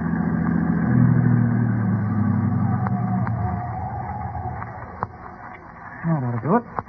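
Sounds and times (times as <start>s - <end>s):
car engine rumbling as the car pulls off the road: 0.0s - 6.8s.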